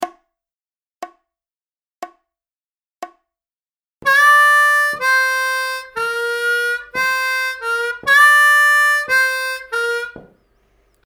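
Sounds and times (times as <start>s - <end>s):
intermediate harmonica licks in G: 4.0s - 10.9s.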